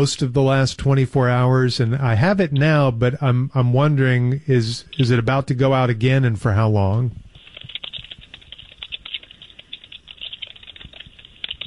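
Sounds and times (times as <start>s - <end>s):
speech: 0.0s - 7.2s
fast typing on a computer keyboard: 7.3s - 11.6s.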